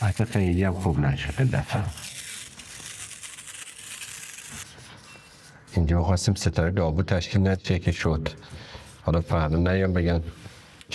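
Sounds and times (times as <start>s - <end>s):
adhesive tape pulled off a roll and pressed onto surfaces during home renovation: 0.0s - 4.9s
speech: 0.1s - 2.2s, 5.8s - 10.9s.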